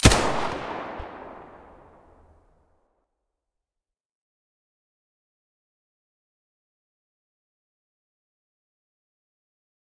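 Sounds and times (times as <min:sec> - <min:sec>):
MP9 muzzle blast: 0:00.0 - 0:02.4.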